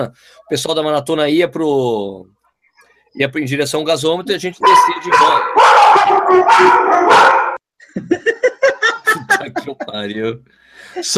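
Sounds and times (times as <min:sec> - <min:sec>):
speech: 0:00.0 - 0:02.4, 0:03.2 - 0:05.6, 0:06.3 - 0:08.4, 0:09.7 - 0:11.1
dog howling: 0:04.6 - 0:07.6
laughter: 0:07.8 - 0:10.2.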